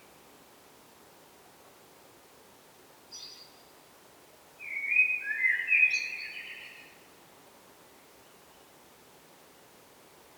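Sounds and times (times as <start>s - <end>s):
Eurasian blackbird Turdus merula warbled song: 3.1s - 3.6s, 4.6s - 7.0s.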